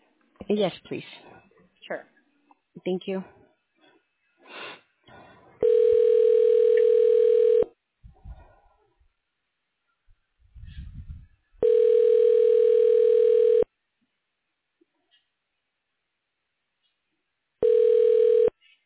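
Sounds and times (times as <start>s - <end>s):
speech: 0.4s - 1.3s, 1.9s - 2.1s, 2.8s - 3.4s
office phone system ringing tone during voicemail transfer: 5.6s - 7.7s, 11.6s - 13.7s, 17.6s - 18.6s.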